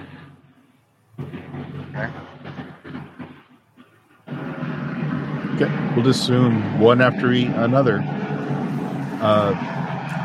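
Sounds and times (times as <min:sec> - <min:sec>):
roaring rush of microphone feedback: 0:00.0 - 0:00.6, 0:01.2 - 0:10.2
speech: 0:02.0 - 0:02.3, 0:05.6 - 0:08.6, 0:09.2 - 0:09.8.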